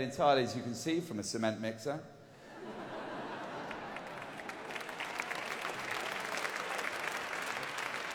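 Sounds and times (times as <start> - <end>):
speech: 0.0 - 2.2
laughter: 2.5 - 4.9
audience applause: 3.2 - 8.1.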